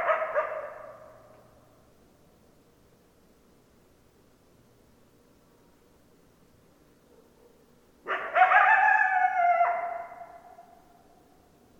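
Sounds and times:
coyote howl: 0:08.1 - 0:10.8.

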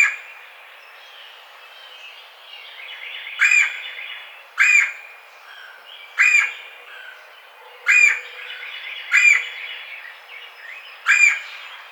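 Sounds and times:
Red-bellied woodpecker rough rolling kwirr calls: 0:04.6 - 0:07.2, 0:07.8 - 0:09.6, 0:11.0 - 0:11.6.

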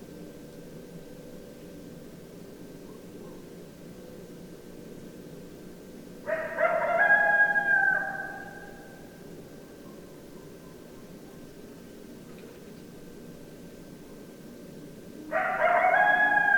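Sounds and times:
several coyotes howling in chorus: 0:06.2 - 0:11.5, 0:15.3 - 0:16.5.

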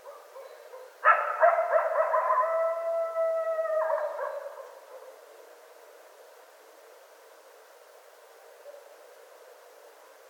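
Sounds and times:
coyotes howling and yipping: 0:00.0 - 0:05.3.

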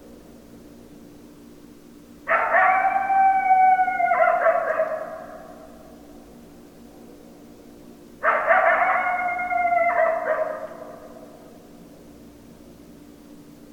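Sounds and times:
steady low hum: 0:00.0 - 0:13.7
several coyotes howling: 0:02.3 - 0:06.0, 0:08.2 - 0:11.6.

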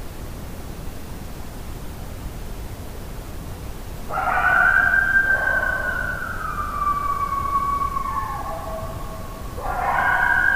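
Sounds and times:
coyote howl: 0:04.1 - 0:10.5.

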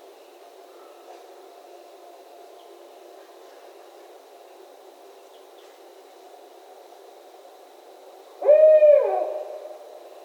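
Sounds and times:
barred owl giving a hollow hoot: 0:08.4 - 0:09.8.

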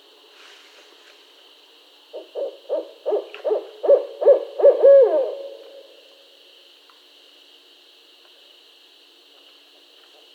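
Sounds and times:
constant high hiss: 0:00.0 - 0:10.3
barred owl hooting: 0:02.1 - 0:06.0.

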